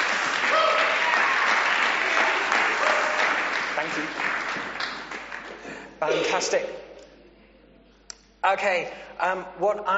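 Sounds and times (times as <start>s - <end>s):
audience applause: 0.0s - 5.8s
speech: 6.0s - 6.8s, 8.4s - 9.9s.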